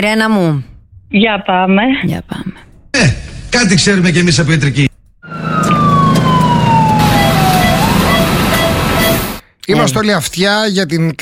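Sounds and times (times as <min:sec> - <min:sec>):
speech: 0:00.0 - 0:04.9, 0:09.7 - 0:11.1
traffic rumble: 0:04.8 - 0:09.4
ambulance siren wailing: 0:05.2 - 0:09.4.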